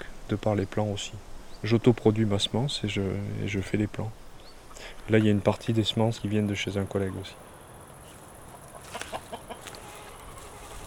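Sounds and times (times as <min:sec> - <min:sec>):
steady hiss: 0:00.0 - 0:10.8
speech: 0:00.3 - 0:04.2, 0:04.8 - 0:07.5
hens clucking in a henhouse: 0:06.8 - 0:10.8.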